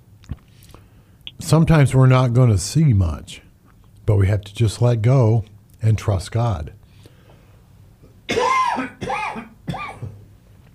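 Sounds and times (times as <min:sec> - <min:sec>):
speech: 0:01.5 - 0:03.4, 0:04.1 - 0:06.8
man coughing: 0:08.3 - 0:10.2.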